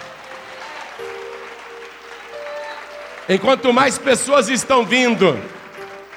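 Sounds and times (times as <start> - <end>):
audience applauding: 0.0 - 6.1
speech: 3.3 - 5.6.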